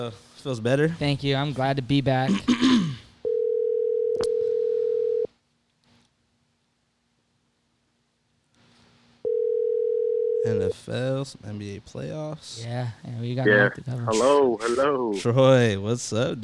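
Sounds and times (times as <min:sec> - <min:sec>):
speech: 0:00.0 - 0:02.8, 0:10.5 - 0:16.4
telephone dial tone while placing call: 0:03.3 - 0:05.3, 0:09.3 - 0:10.4.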